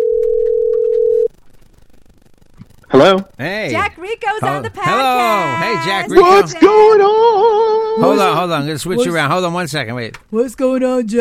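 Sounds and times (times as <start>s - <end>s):
telephone dial tone: 0.0s - 1.3s
faint telephone line noise: 1.2s - 9.9s
speech: 2.9s - 11.2s.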